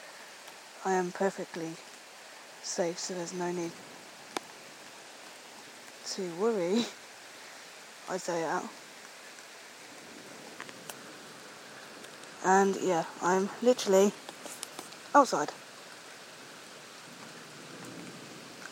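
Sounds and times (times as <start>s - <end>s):
rain pouring down outdoors during a thunderstorm in France: 0.0s - 18.6s
speech: 0.8s - 1.9s, 2.6s - 3.9s, 6.1s - 7.0s, 8.1s - 8.8s, 12.4s - 14.3s, 15.1s - 15.6s.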